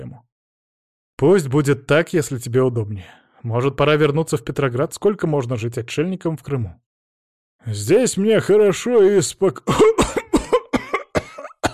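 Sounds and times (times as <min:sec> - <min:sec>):
speech: 0:01.2 - 0:06.9, 0:07.6 - 0:10.2
sick bedridden emperor coughing in a harsh fit: 0:09.7 - 0:11.7.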